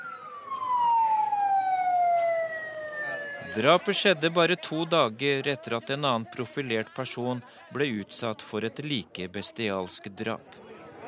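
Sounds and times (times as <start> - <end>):
loud emergency vehicle siren wailing in a street: 0.0 - 4.2
speech: 3.6 - 10.7.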